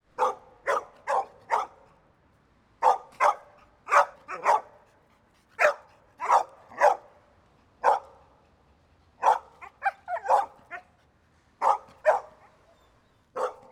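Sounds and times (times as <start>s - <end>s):
medium-size dog barking: 0.1s - 1.9s, 2.8s - 4.8s, 5.6s - 7.1s, 7.8s - 8.2s, 9.2s - 10.9s, 11.6s - 12.6s, 13.4s - 13.7s.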